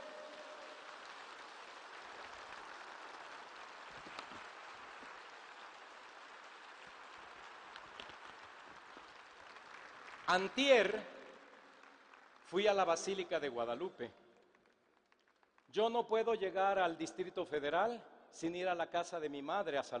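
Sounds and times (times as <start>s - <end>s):
audience applause: 0.0s - 12.8s
speech: 10.3s - 11.1s, 12.5s - 14.2s, 15.7s - 19.9s.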